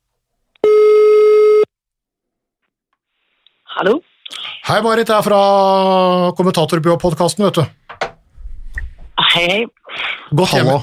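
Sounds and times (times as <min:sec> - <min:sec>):
telephone ringing tone while placing a call: 0:00.6 - 0:01.7
speech: 0:03.8 - 0:07.8, 0:09.4 - 0:10.8.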